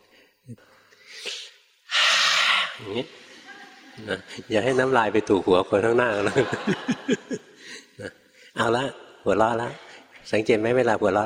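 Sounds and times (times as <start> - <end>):
short sharp breaths: 0.0 - 2.9
speech: 0.5 - 1.3, 2.8 - 3.3, 4.0 - 11.2
loud sustained forceful exhaling: 1.0 - 3.0
laughter: 6.0 - 8.8.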